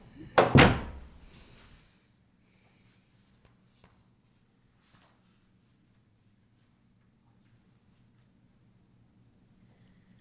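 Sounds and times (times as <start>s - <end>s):
door closing: 0.4s - 1.1s.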